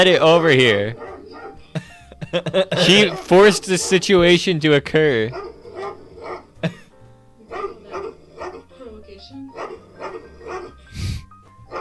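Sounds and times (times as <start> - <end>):
speech: 0.0 - 1.1, 2.3 - 5.5, 6.6 - 6.8
agitated dog barking: 1.0 - 1.6, 2.8 - 4.1, 5.3 - 6.7, 7.5 - 8.8, 9.5 - 10.9
laughter: 1.6 - 3.6.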